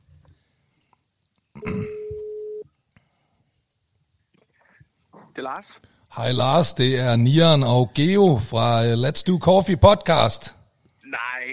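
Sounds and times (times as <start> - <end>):
phone ringing tone beep while a phone call is dialed: 1.6 - 2.6
speech: 5.4 - 10.6.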